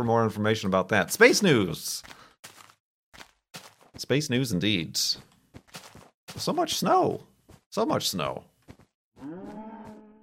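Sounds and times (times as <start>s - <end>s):
speech: 0.0s - 2.2s, 4.0s - 5.3s, 6.3s - 8.5s, 9.2s - 9.7s
cow mooing: 9.2s - 10.2s.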